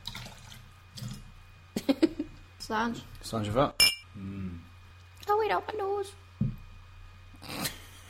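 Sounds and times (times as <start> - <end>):
water pouring into a glass of whiskey: 0.0 - 1.2
speech: 2.7 - 4.3, 5.5 - 6.2.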